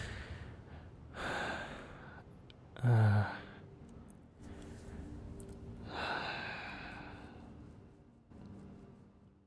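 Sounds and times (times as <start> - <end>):
slow airy inhales and exhales: 0.0 - 2.3, 4.4 - 7.9.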